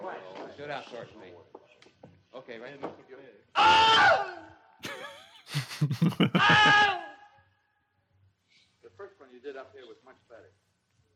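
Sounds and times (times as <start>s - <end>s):
speech: 0.6s - 1.7s, 2.3s - 7.0s, 9.0s - 10.6s
laughter: 4.8s - 7.0s
man screaming in pain from an alligator bite: 5.5s - 7.1s.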